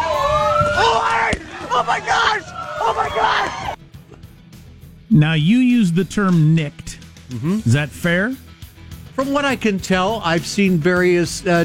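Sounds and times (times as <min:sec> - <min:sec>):
noisy crowd shouting at a night street protest: 0:00.0 - 0:03.8
speech: 0:01.8 - 0:03.8, 0:05.1 - 0:08.4, 0:09.2 - 0:11.6.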